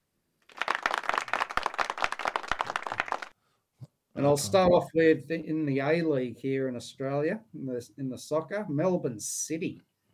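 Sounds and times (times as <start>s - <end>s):
small group applauding: 0.4s - 3.4s
speech: 4.2s - 9.9s.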